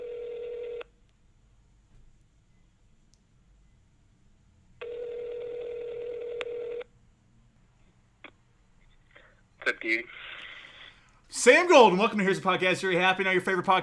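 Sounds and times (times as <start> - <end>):
ringback tone of an outgoing phone call: 0.0 - 0.9, 4.8 - 6.9
phone line click: 6.2 - 6.8
speech: 9.7 - 10.3, 11.3 - 13.8.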